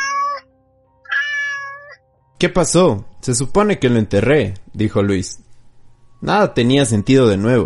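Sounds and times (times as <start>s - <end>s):
cat meowing: 0.0s - 2.0s
speech: 2.4s - 5.4s, 6.2s - 7.6s.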